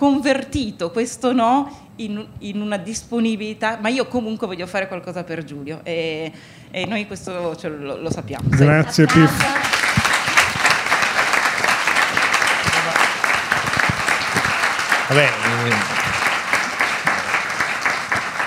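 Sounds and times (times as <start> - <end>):
speech: 0.0 - 9.9, 15.1 - 16.0
audience applause: 8.7 - 18.4.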